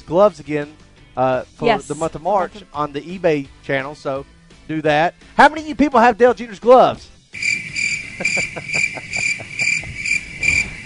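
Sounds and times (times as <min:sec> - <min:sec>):
speech: 0:00.1 - 0:07.6, 0:08.2 - 0:09.2
laughter: 0:01.6 - 0:02.6, 0:08.1 - 0:10.1
cricket chirping sound effect: 0:07.4 - 0:10.8.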